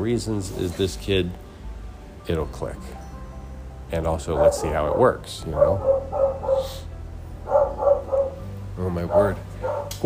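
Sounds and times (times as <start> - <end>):
speech: 0.0 - 1.4, 2.2 - 3.1, 3.9 - 6.8, 8.8 - 10.0
dog barking in sharp yips: 4.3 - 10.0.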